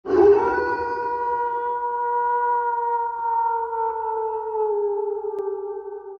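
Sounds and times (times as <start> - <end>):
werewolf howl: 0.1 - 6.1.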